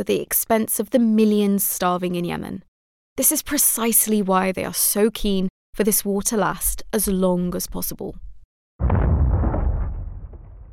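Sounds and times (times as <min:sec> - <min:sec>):
speech: 0:00.0 - 0:08.2
heavy explosion with deep rumbling roar: 0:08.8 - 0:10.7.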